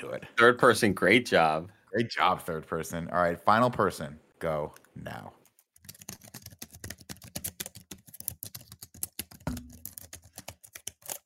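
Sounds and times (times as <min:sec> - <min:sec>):
speech: 0:00.0 - 0:05.4
rapid typing on a computer keyboard: 0:05.5 - 0:11.2.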